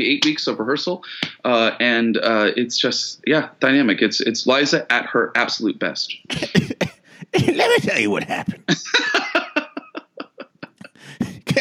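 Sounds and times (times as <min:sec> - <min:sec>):
speech: 0:00.0 - 0:06.8, 0:07.4 - 0:09.2
person imitating coughing as part of an impression: 0:06.2 - 0:08.6, 0:10.8 - 0:11.5
laughter: 0:06.3 - 0:11.5.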